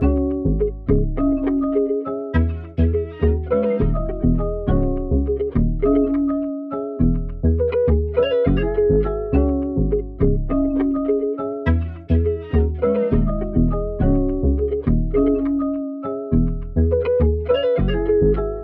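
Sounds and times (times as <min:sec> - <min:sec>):
West Coast melody loop in C sharp minor: 0:00.0 - 0:18.6.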